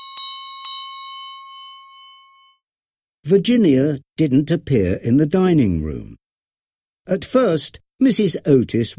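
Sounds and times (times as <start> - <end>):
small bell ringing for afternoon tea: 0.0 - 2.7
speech: 3.3 - 6.2, 7.1 - 8.9.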